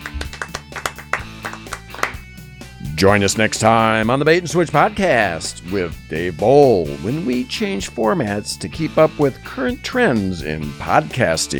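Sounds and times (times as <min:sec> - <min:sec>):
hand clapping to close a show: 0:00.0 - 0:02.4
speech: 0:03.0 - 0:11.5.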